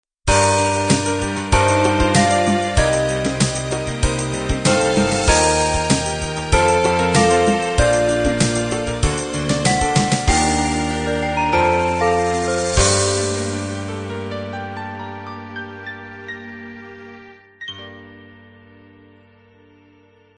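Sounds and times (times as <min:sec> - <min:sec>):
love ballad ending: 0:00.3 - 0:16.6.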